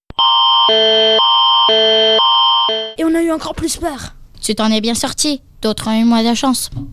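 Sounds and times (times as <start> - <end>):
two-tone emergency alert on a mobile phone: 0.1 - 3.0
speech: 0.7 - 1.1, 3.2 - 6.9.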